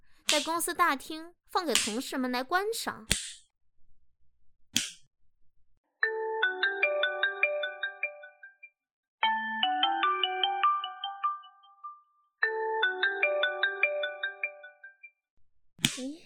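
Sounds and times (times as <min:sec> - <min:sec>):
speech: 0:00.4 - 0:03.4
sharp click: 0:03.1 - 0:03.5, 0:04.8 - 0:05.1
phone ringtone for an incoming call: 0:06.0 - 0:08.6, 0:09.2 - 0:15.0.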